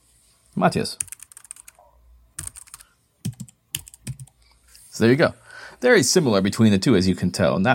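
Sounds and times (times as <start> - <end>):
speech: 0.6 - 1.2, 5.0 - 7.7
keys clattering on a computer keyboard: 1.0 - 1.8, 2.4 - 4.3.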